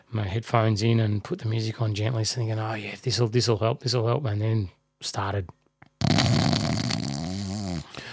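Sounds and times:
speech: 0.1s - 5.6s
many people snoring: 6.0s - 7.9s.

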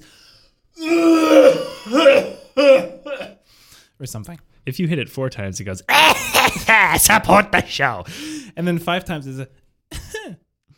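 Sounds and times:
cough sound effects from a soundboard button: 1.3s - 3.4s, 5.9s - 7.0s, 9.9s - 10.5s
speech: 4.0s - 10.4s.

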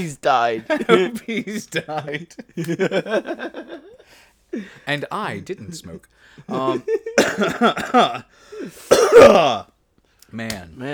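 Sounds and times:
speech: 0.0s - 9.7s, 10.3s - 10.9s
laughter: 0.5s - 4.8s, 6.4s - 8.2s
loud fit of harsh raspy coughs: 6.5s - 9.7s.

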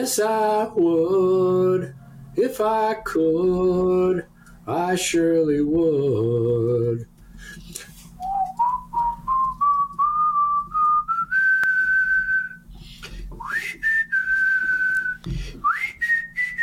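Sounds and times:
speech: 0.0s - 7.8s
person whistling a rising sliding tune: 8.2s - 12.6s, 13.4s - 16.6s.

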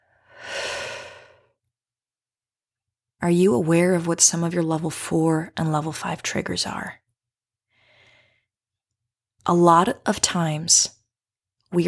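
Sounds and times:
deep breath in and exhale during a guided calming exercise: 0.0s - 1.6s, 7.7s - 8.5s
speech: 3.2s - 7.0s, 9.4s - 11.0s.

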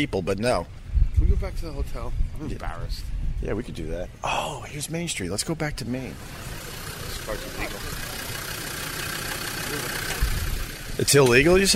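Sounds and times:
speech: 0.0s - 8.0s, 11.0s - 11.7s
diesel Land Rover 110 idling on a street in Nantucket: 6.0s - 11.7s.

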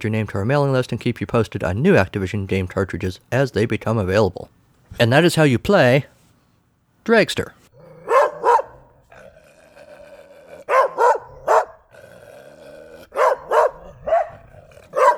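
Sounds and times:
speech: 0.0s - 6.2s, 7.0s - 7.6s
dog barking: 7.8s - 12.2s, 12.8s - 15.1s.

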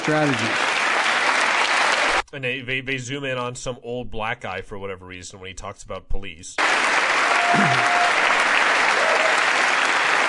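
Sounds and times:
large indoor audience applauding in a legislative chamber: 0.0s - 2.2s, 6.6s - 10.2s
speech: 0.1s - 0.6s, 2.3s - 8.2s.

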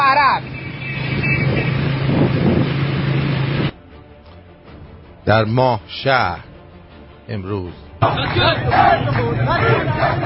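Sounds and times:
riot-control vehicles driving along main road of Masjed Soleyman: 0.0s - 5.2s, 7.6s - 10.2s
wind buffeting the microphone: 1.5s - 3.7s
speech: 5.3s - 6.5s, 7.3s - 10.2s.

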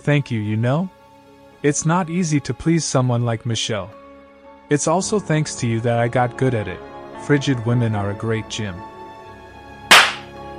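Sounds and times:
speech: 0.0s - 1.0s, 1.6s - 4.0s, 4.7s - 8.9s
loud sharp slap to the face: 9.9s - 10.3s.

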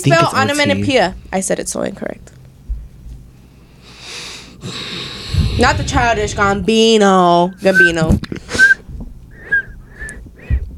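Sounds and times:
speech: 0.0s - 2.4s, 5.6s - 8.3s
person trying to whistle: 7.5s - 10.7s.

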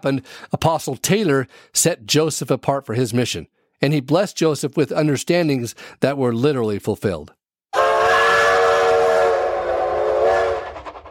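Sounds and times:
speech: 0.0s - 7.4s
steam train whistle on the Denver Rio Grande Railroad leaving Salt Lake: 7.7s - 11.0s.

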